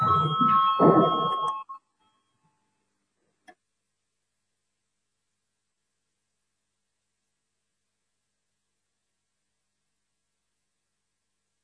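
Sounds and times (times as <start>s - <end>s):
parliament voting bell electronic ringing tone: 0.0s - 2.4s.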